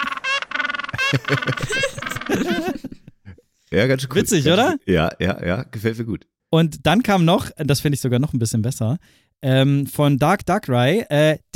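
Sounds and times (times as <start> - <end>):
penguin braying with honk-like calls: 0.0 - 2.7
laughter: 0.0 - 3.4
speech: 1.1 - 2.7, 3.7 - 11.5.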